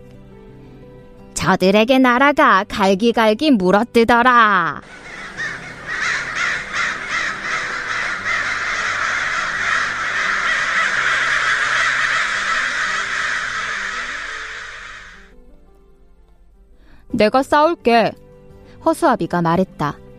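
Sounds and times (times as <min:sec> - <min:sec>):
speech: 0:01.4 - 0:05.0, 0:17.2 - 0:18.2, 0:18.8 - 0:20.0
loud flock of crows cawing: 0:04.8 - 0:15.3.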